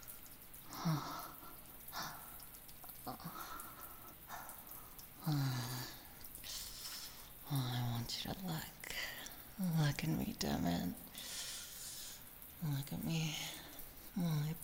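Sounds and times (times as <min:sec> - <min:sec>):
water dripping: 0:00.0 - 0:14.6
speech: 0:05.3 - 0:05.6, 0:09.7 - 0:11.1, 0:12.6 - 0:13.6, 0:14.2 - 0:14.6.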